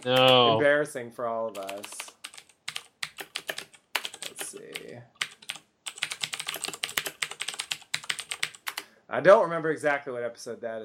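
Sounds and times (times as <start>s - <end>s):
typing on a computer keyboard: 0.0s - 0.4s, 1.5s - 8.8s
speech: 0.0s - 2.2s, 9.1s - 10.8s.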